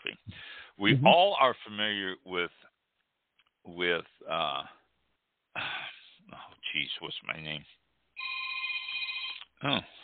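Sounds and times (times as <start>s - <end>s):
speech: 0.8s - 2.7s, 3.6s - 4.8s, 6.3s - 8.3s, 9.6s - 10.0s
telephone ringing with an electronic trill: 8.2s - 9.4s.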